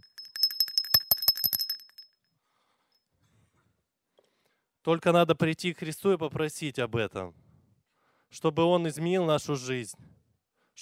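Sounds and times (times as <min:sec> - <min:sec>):
small bell ringing: 0:00.0 - 0:02.2
speech: 0:04.8 - 0:07.4, 0:08.3 - 0:10.2.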